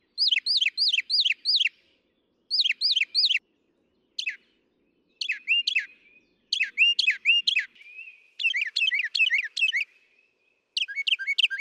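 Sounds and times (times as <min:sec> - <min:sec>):
northern mockingbird song: 0:00.0 - 0:01.9, 0:02.5 - 0:11.5.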